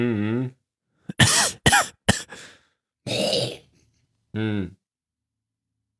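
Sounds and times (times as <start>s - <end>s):
rasping throat clearing: 1.1s - 2.4s, 3.1s - 3.6s
person coughing: 1.1s - 2.5s, 3.1s - 3.6s.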